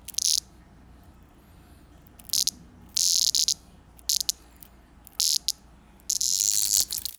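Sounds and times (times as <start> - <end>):
cicada: 0.0 - 0.5, 2.2 - 7.1.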